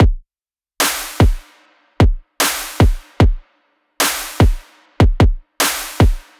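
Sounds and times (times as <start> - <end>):
future bass EDM drum kit beat: 0.0 - 0.2, 0.8 - 3.4, 4.0 - 6.3.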